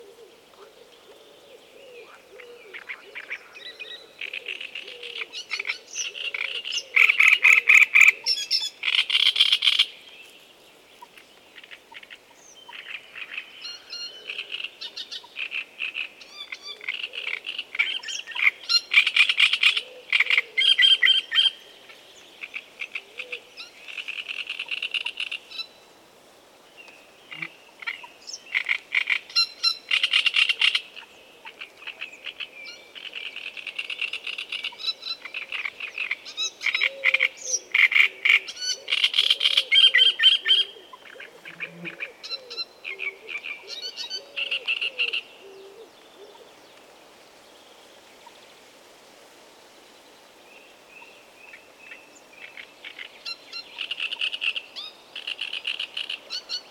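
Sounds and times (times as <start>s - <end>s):
great reed warbler calling: 0.0s - 10.4s, 11.0s - 25.8s, 26.8s - 46.9s, 50.0s - 56.6s.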